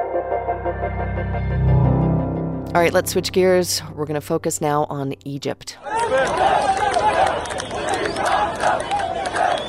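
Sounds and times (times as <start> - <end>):
speech: 0.2 - 1.8, 2.7 - 9.5
anti-government street protest crowd shouting in a city: 5.8 - 9.6.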